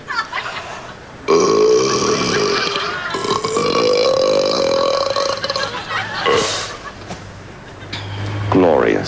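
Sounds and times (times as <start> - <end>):
laughter: 0.0 - 1.0, 2.1 - 3.4, 5.2 - 8.1
person burping: 1.3 - 6.6.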